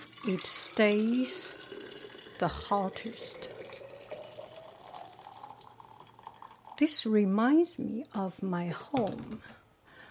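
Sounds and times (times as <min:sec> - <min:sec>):
hot water poured into a bottle: 0:00.0 - 0:07.1
speech: 0:00.2 - 0:01.7, 0:02.4 - 0:03.6, 0:06.8 - 0:09.6.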